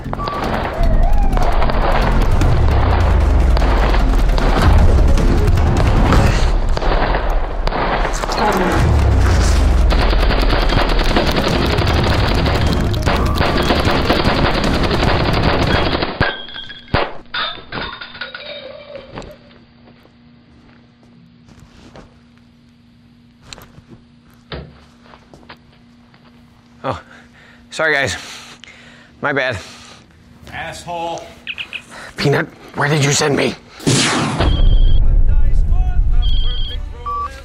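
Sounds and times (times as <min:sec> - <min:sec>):
heavy booming blasts: 0:00.4 - 0:16.0, 0:33.9 - 0:36.5
rapid bursts of gunfire: 0:01.5 - 0:16.2
speech: 0:27.8 - 0:28.3, 0:29.2 - 0:29.8, 0:30.7 - 0:31.4, 0:32.2 - 0:33.6.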